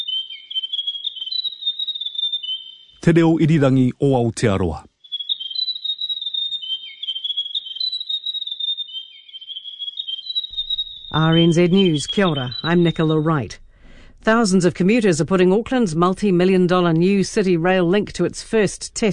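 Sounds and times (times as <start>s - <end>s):
grey warbler singing a high thin trill: 0.0s - 3.2s, 4.9s - 13.6s
speech: 3.0s - 4.9s, 11.1s - 13.6s, 14.2s - 19.1s.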